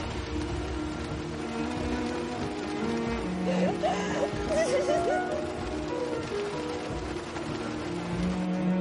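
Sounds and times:
heavy rain pouring in a dense steady hiss: 0.0 - 8.7
laughter: 3.3 - 6.1.

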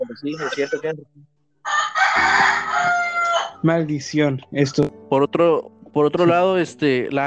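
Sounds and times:
speech: 0.1 - 7.2
rooster crowing: 1.6 - 3.6.

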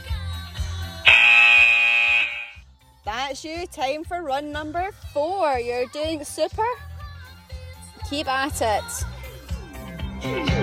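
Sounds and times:
loud sustained electronic workout timer buzzer: 1.0 - 2.6
speech: 3.3 - 6.9, 8.1 - 9.1, 10.2 - 10.6.

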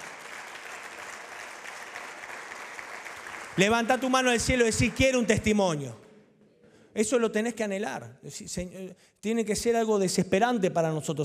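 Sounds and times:
audience applauding: 0.0 - 5.8
speech: 3.6 - 6.0, 7.0 - 11.2.

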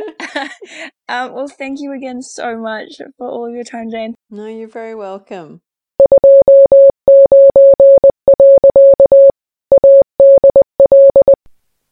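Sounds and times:
speech: 0.4 - 5.7
mid-pitched Morse code beeps: 6.0 - 11.4.

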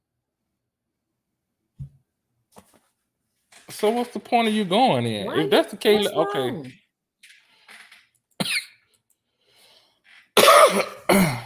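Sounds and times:
speech: 3.8 - 6.8
harsh fit of coughing: 8.4 - 8.8, 10.4 - 11.4.

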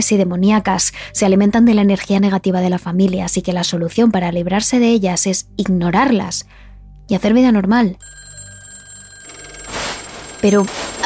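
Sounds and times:
speech: 0.0 - 8.2, 10.4 - 11.0
telephone ringing with a buzzing bell tone: 8.0 - 11.0.

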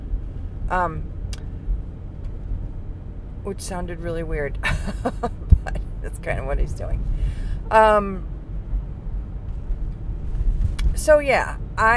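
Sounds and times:
truck engine rumbling outdoors: 0.0 - 11.9
speech: 0.7 - 1.2, 3.4 - 8.3, 11.0 - 11.9.

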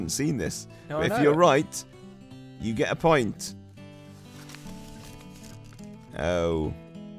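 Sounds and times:
speech: 0.0 - 2.0, 2.6 - 3.6, 6.2 - 6.8
paper envelope rustled and handled: 3.9 - 6.2.

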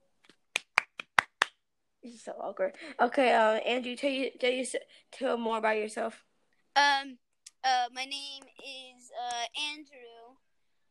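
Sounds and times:
sharp hand claps: 0.2 - 1.6
speech: 2.0 - 10.1.

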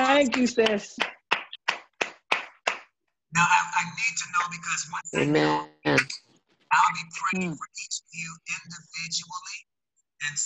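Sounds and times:
audience clapping hands: 0.0 - 3.0
speech: 0.2 - 1.2, 3.3 - 10.4.

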